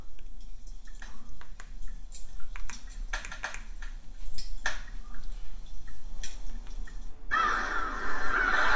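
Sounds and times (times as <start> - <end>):
chorus of gull cries: 7.3 - 8.7
crows cawing: 7.3 - 8.7.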